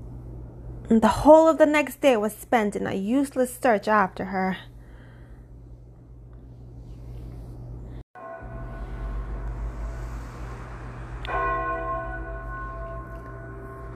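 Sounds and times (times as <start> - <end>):
speech: 0.9 - 4.7
steady low rumble: 5.4 - 13.9
church vesper bell tolled by the clerk: 8.2 - 13.9.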